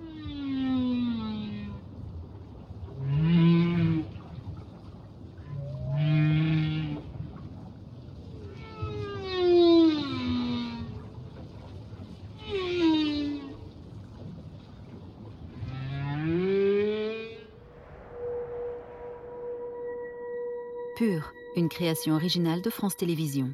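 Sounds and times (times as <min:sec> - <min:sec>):
male whale's deep powerful courtship song: 0:00.0 - 0:22.5
faint sustained tone: 0:17.3 - 0:23.5
speech: 0:21.1 - 0:23.5.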